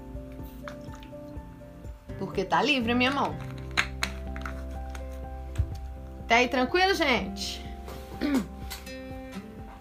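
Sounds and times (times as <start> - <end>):
person drinking water from a small bottle: 0.6 - 1.2
speech: 2.2 - 3.5, 6.3 - 7.6, 8.2 - 8.5.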